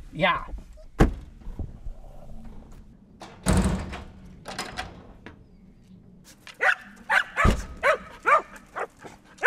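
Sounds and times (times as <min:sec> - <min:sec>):
door-like thumps and clatter: 0:03.2 - 0:05.2
excited herding dogs barking: 0:06.6 - 0:09.4.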